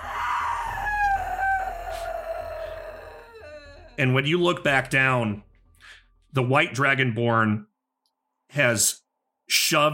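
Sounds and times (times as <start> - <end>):
long piercing scream: 0.0 - 4.0
speech: 4.0 - 5.5, 6.3 - 7.7, 8.5 - 9.9.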